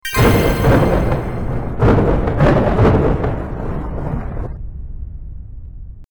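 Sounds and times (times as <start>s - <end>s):
slot machine big win jingle: 0.0s - 2.6s.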